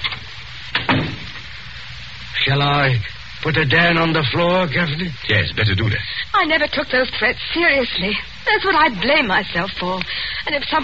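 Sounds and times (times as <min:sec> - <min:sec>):
theater box door shutting with a dull thud: 0:00.7 - 0:01.4
speech: 0:02.5 - 0:10.8.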